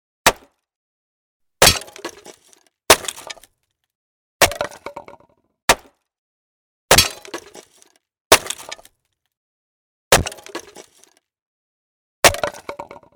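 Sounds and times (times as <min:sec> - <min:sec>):
chopping with an axe: 0:00.2 - 0:00.6, 0:01.6 - 0:03.5, 0:04.4 - 0:04.8, 0:05.7 - 0:06.0, 0:06.9 - 0:08.9, 0:10.1 - 0:11.0, 0:12.2 - 0:12.6.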